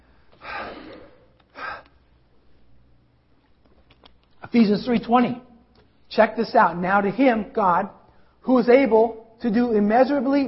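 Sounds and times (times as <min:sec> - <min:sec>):
person breathing: 0:00.0 - 0:02.1
speech: 0:04.5 - 0:05.5, 0:06.2 - 0:10.4.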